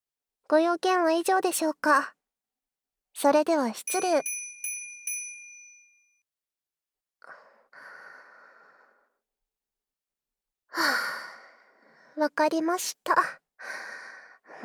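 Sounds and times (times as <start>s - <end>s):
speech: 0.5s - 2.2s, 3.2s - 4.4s, 10.8s - 11.2s, 12.2s - 14.0s
bell ringing: 3.9s - 6.2s.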